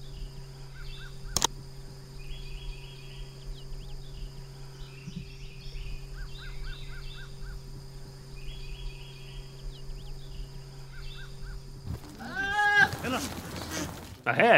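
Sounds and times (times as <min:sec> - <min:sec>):
birds chirping: 0:00.0 - 0:14.5
steady low hum: 0:00.0 - 0:14.5
goat bleating: 0:12.1 - 0:14.1
speech: 0:14.3 - 0:14.5.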